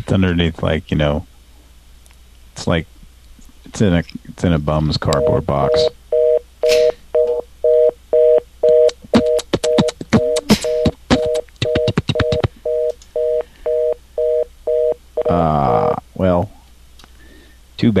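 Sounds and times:
speech: 0.0 - 1.3, 2.6 - 2.9, 3.6 - 6.0, 17.8 - 17.9
telephone line tone from a phone buried under rubble: 5.1 - 15.9.

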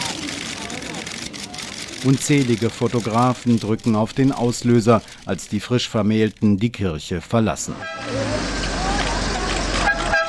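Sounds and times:
road and traffic noise: 0.0 - 10.2
speech: 2.0 - 8.6
silver Jaguar car horn honking as a wedding party drives away: 7.7 - 8.8, 9.6 - 10.2.

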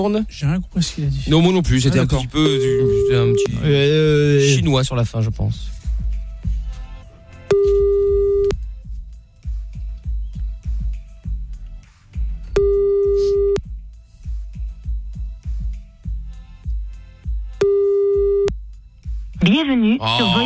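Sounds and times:
speech: 0.0 - 5.8
low rumbling noise: 0.0 - 20.4
telephone ringback tone while calling someone back: 2.4 - 3.6, 7.5 - 8.5, 12.6 - 13.6, 17.6 - 18.5.

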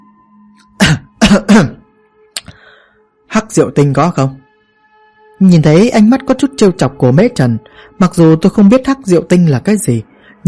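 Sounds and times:
person giving dry throaty coughs: 0.7 - 1.8
speech: 0.9 - 1.8, 3.4 - 4.4, 5.4 - 10.4.

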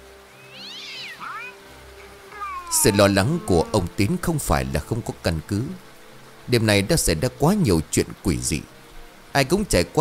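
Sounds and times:
black cat meowing at a door: 0.3 - 3.9
speech: 2.7 - 5.9, 6.5 - 9.9.

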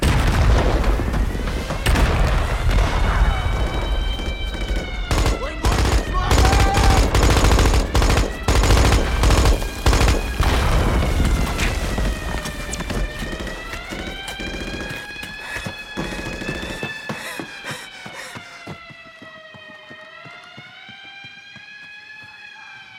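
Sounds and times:
guards firing guns at prisoners escaping through a minefield: 0.0 - 15.1
constant roar: 0.0 - 22.9.

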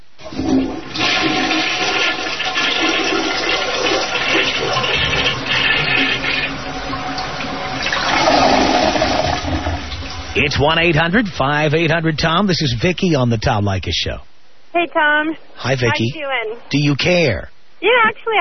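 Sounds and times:
toilet flushing: 0.2 - 11.8
speech: 10.6 - 18.4.

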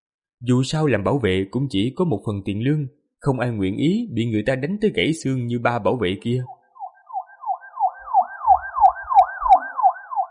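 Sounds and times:
speech: 0.4 - 6.6
police car siren yelping: 6.5 - 10.2.

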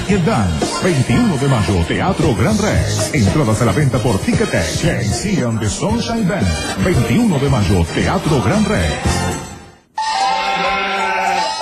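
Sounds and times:
speech: 0.1 - 9.4
sheep bleating: 10.0 - 11.6.

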